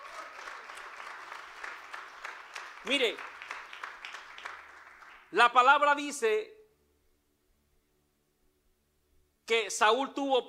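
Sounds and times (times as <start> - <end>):
church congregation applauding: 0.0 - 5.8
speech: 2.8 - 3.3, 5.3 - 6.5, 9.5 - 10.4.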